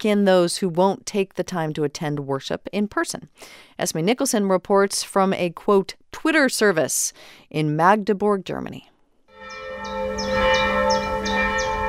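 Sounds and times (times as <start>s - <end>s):
speech: 0.0s - 8.9s
single church bell pealing for evening prayers: 9.3s - 11.8s.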